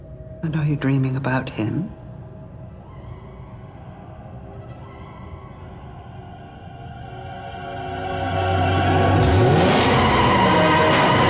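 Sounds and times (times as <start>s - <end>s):
speech: 0.4s - 2.0s
second vehicle roaring past: 7.6s - 11.2s
car engine revving hard in a high-speed chase: 8.5s - 11.2s
tire rush: 8.7s - 11.2s.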